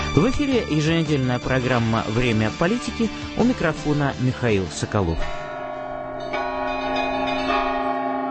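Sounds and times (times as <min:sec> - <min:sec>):
speech: 0:00.1 - 0:05.5
church bell ringing for evening service: 0:05.0 - 0:08.2.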